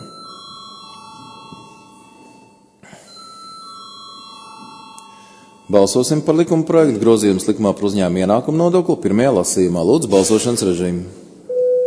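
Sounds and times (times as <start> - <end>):
sustained electric bell ringing in a large room: 0.0 - 6.2
speech: 5.7 - 11.2.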